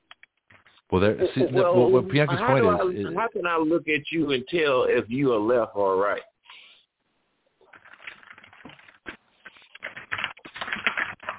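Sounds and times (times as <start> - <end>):
papers rustling while being handled: 0.0 - 0.9, 7.6 - 11.3
speech: 0.9 - 6.3.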